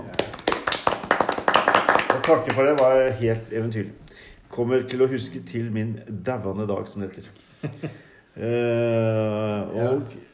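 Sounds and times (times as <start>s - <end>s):
hands clapping in applause: 0.0s - 3.2s
speech: 2.2s - 10.3s.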